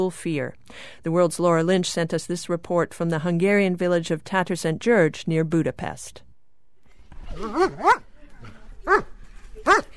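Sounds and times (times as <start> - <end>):
speech: 0.0 - 6.2, 7.3 - 9.9
guard dog barking in a Hungarian village: 7.3 - 8.1, 8.8 - 9.9.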